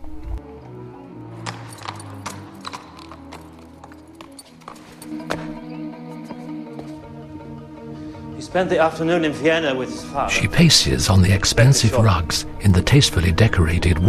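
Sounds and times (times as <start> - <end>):
horse hooves clip-clopping across hard courtyard surface of an imperial hunting lodge: 0.4 - 7.0
speech: 8.5 - 14.0.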